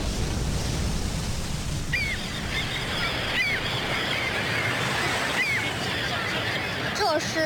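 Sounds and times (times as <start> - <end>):
sea waves washing in a naval port: 0.0 - 7.4
seabird calls: 1.8 - 7.4.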